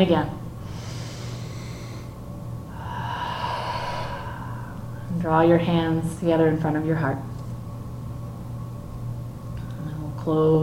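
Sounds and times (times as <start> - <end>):
speech: 0.0 - 0.4, 5.2 - 7.3, 10.3 - 10.6
deep breath in and exhaled through an open mouth during guided yoga: 0.6 - 5.1.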